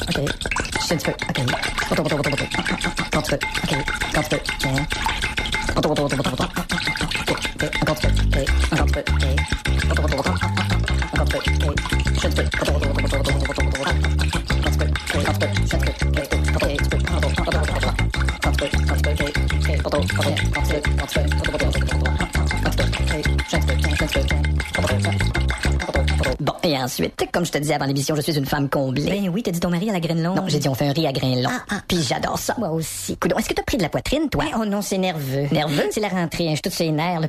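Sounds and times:
whisk clattering against a bowl whisking homemade mayonnaise: 0:00.0 - 0:27.7
speech: 0:00.2 - 0:04.9, 0:27.4 - 0:37.2.

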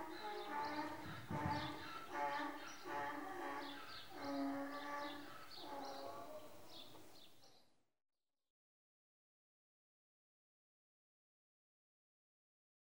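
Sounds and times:
donkeys braying in a shed while eating: 0:00.0 - 0:06.8.

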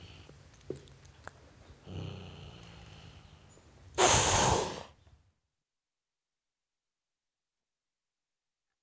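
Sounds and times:
tom cat hissing at a dog: 0:04.0 - 0:05.0.

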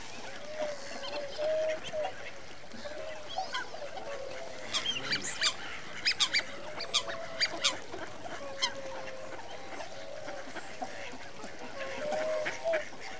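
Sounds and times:
winter migrant waterfowl flock calling: 0:00.0 - 0:13.1.

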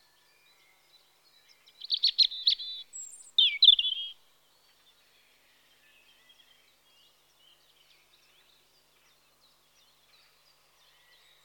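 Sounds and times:
European robin song in spring: 0:01.8 - 0:04.2.

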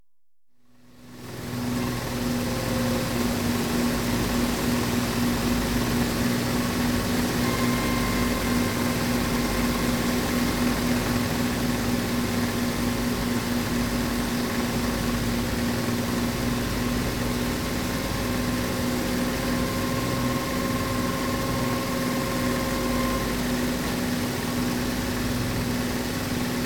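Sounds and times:
aircraft descending and landing: 0:01.6 - 0:26.5.

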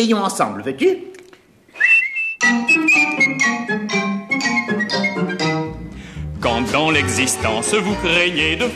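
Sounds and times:
speech: 0:00.0 - 0:01.1, 0:02.5 - 0:04.0, 0:06.4 - 0:08.7
person whistling a bright tune: 0:01.7 - 0:03.4, 0:04.4 - 0:05.5
lively instrumental music: 0:01.8 - 0:08.7.

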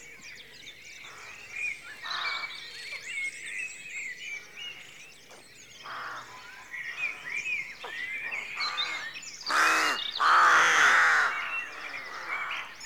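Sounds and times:
rook chorus cawing at a rookery at dawn: 0:05.8 - 0:07.2, 0:08.4 - 0:12.8
two long loud grating rook caws: 0:08.6 - 0:12.8.

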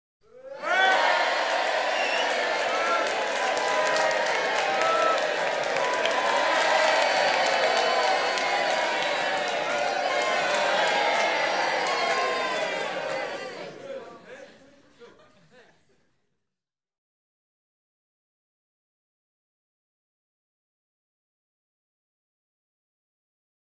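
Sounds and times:
light entertainment audience cheering: 0:00.3 - 0:14.2
laughter: 0:11.8 - 0:16.2.

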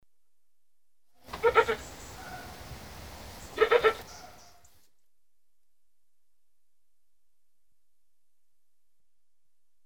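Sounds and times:
billy goat calling nanny goat: 0:01.3 - 0:02.8, 0:03.4 - 0:04.4.

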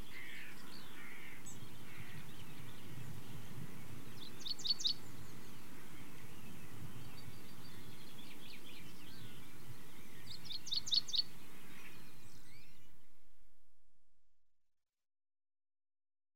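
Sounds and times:
British common chaffinch singing: 0:00.0 - 0:14.4.

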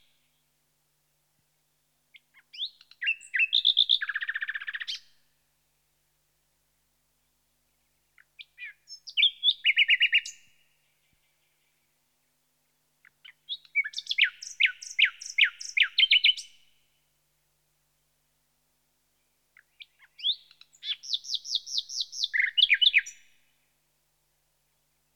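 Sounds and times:
common nightingale song: 0:02.1 - 0:05.6, 0:07.1 - 0:17.2, 0:19.0 - 0:25.1.

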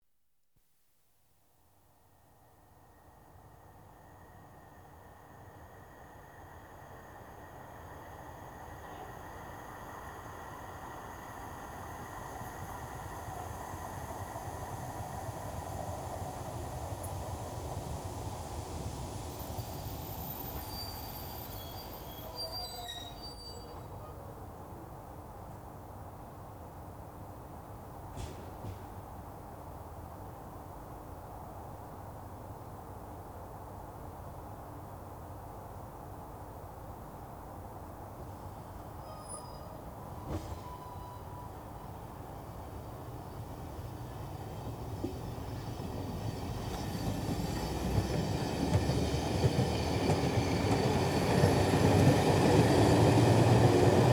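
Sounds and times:
electric train arriving: 0:02.4 - 0:24.2, 0:38.7 - 0:54.1.

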